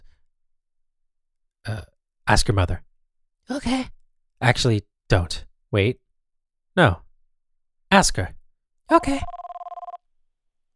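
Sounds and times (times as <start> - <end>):
speech: 1.7 - 2.9, 3.5 - 6.0, 6.8 - 7.0, 7.9 - 9.4
telephone ringing with electronic trilling: 8.9 - 10.0.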